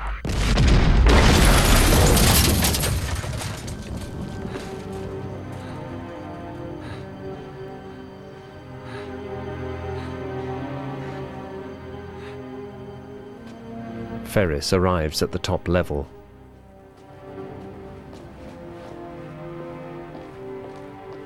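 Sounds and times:
explosion with deep boom and crackling debris: 0:00.0 - 0:05.5
speech: 0:14.3 - 0:16.2.

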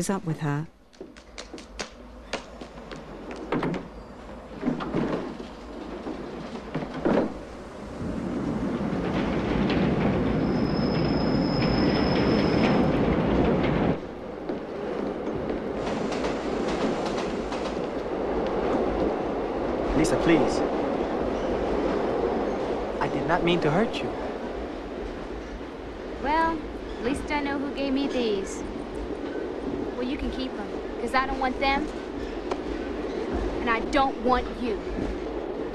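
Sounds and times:
speech: 0:00.0 - 0:00.8, 0:23.4 - 0:24.2, 0:27.8 - 0:28.8, 0:30.1 - 0:32.4, 0:33.7 - 0:35.2
London Underground tube train running with a rumbling clatter: 0:00.0 - 0:35.7
thin high tube train wheel squeal: 0:10.4 - 0:12.9.

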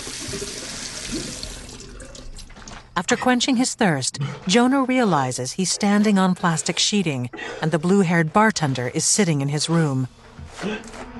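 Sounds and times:
water running from a sink faucet in a motel room: 0:00.0 - 0:02.8
speech: 0:03.0 - 0:11.1.

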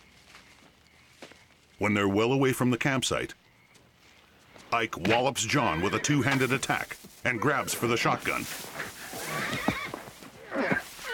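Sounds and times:
faint noise: 0:00.0 - 0:11.1
shuffling hooves: 0:00.0 - 0:11.1
speech: 0:01.8 - 0:03.4, 0:04.7 - 0:08.9
alarmed horses neighing and whinnying: 0:05.1 - 0:11.1.

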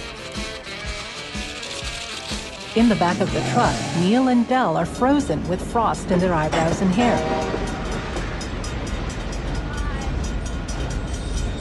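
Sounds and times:
speech: 0:02.8 - 0:07.6
train pulling into a small-town station: 0:03.4 - 0:11.5.

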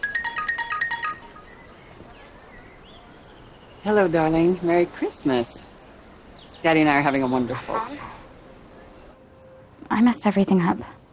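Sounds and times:
woman's phone ringing with a quick electronic ringtone: 0:00.0 - 0:01.6
speech: 0:03.8 - 0:05.7, 0:06.6 - 0:08.2, 0:10.0 - 0:11.0.

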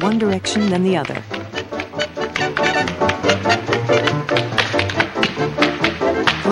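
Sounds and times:
speech: 0:00.0 - 0:01.4
foot tapping on hard floor: 0:00.0 - 0:06.4.

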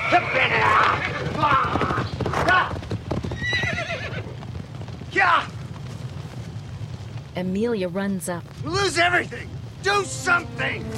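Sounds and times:
several horses whinnying and neighing: 0:00.0 - 0:05.7
clatter of horse hooves: 0:00.0 - 0:07.5
speech: 0:07.4 - 0:10.9.

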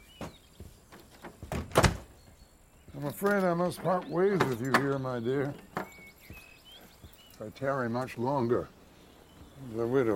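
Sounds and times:
door being shut and locked: 0:01.5 - 0:02.1, 0:03.4 - 0:05.9
speech: 0:03.0 - 0:05.9, 0:07.4 - 0:08.8, 0:09.6 - 0:10.1.

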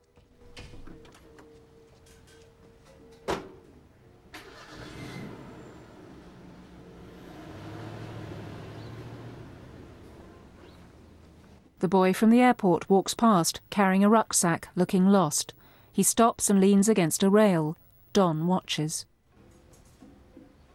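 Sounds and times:
truck engine starting: 0:04.2 - 0:11.8
speech: 0:11.8 - 0:19.1.

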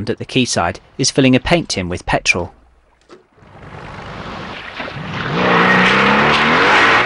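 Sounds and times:
speech: 0:00.0 - 0:02.6
rushing wash of water: 0:02.2 - 0:07.0
motorboat engine revving and accelerating: 0:02.4 - 0:07.0.

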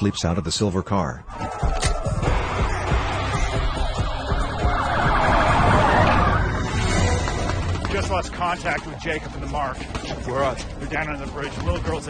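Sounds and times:
speech: 0:00.0 - 0:02.3, 0:08.0 - 0:12.0
police car siren wailing: 0:01.3 - 0:07.7.

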